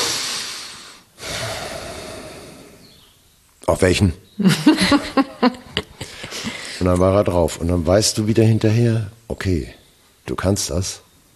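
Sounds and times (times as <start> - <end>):
person imitating a deep snorting breath: 0.0 - 2.8
speech: 3.6 - 5.6, 6.8 - 11.0
laughter: 4.4 - 7.0.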